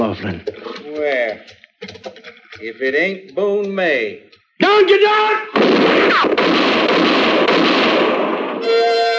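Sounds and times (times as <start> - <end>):
speech: 0.1 - 9.0
gunfire in a shootout with hold-up men in a moonlit clearing: 5.6 - 8.6.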